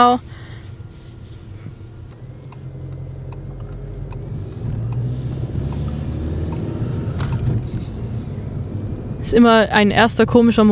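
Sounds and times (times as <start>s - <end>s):
speech: 0.0s - 0.4s, 9.3s - 10.7s
car engine humming at low speed across a parking lot: 0.0s - 10.7s
faint ticking clicks: 2.1s - 7.4s.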